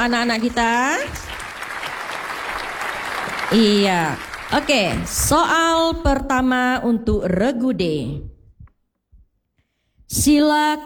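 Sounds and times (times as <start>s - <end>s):
speech: 0.0s - 1.4s, 3.5s - 8.3s, 10.1s - 10.8s
parents and audience applauding at a children's school quiz competition: 0.0s - 5.3s.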